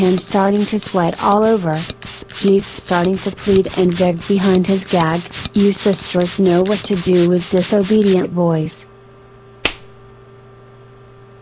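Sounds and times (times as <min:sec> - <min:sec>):
speech: 0:00.0 - 0:08.9
faint steady hum: 0:00.0 - 0:11.3
sharp slap on skin to the groin: 0:09.6 - 0:09.9.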